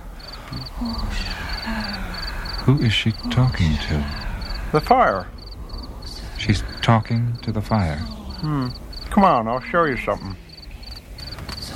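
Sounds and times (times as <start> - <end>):
cricket chirping in short trills: 0.0 - 11.7
faint outdoor ambience: 0.0 - 11.7
low croaking calls: 0.0 - 11.7
speech: 0.5 - 5.4, 6.4 - 10.4.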